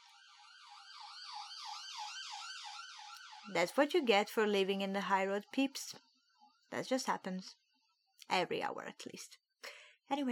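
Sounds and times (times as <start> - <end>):
ambulance siren wailing in a rising-and-falling pattern: 0.0 - 3.9
speech: 3.4 - 6.1, 6.7 - 7.6, 8.2 - 10.2.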